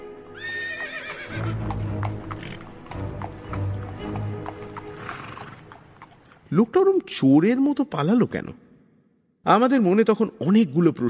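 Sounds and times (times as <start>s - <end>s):
horse whinnying: 0.4s - 2.8s, 4.8s - 5.8s
horse-drawn carriage hooves clip-clopping: 1.1s - 7.2s
speech: 6.5s - 8.6s, 9.5s - 11.0s.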